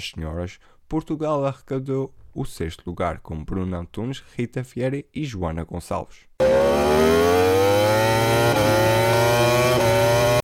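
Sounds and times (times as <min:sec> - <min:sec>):
speech: 0:00.0 - 0:07.6
racing motorcycle engine revving at the Macau Grand Prix motorcycle race: 0:06.4 - 0:10.4.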